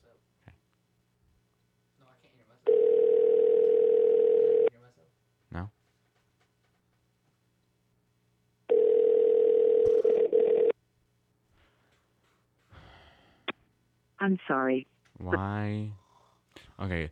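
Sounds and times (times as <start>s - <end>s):
phone ringback tone ringing unanswered: 2.7s - 4.7s, 8.7s - 10.7s
faint breaths: 11.5s - 13.7s, 15.7s - 17.0s
speech: 14.3s - 16.0s, 16.6s - 17.0s.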